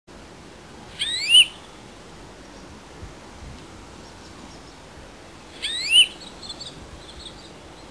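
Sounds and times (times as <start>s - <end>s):
European greenfinch calls: 0.9s - 1.6s, 5.5s - 7.8s.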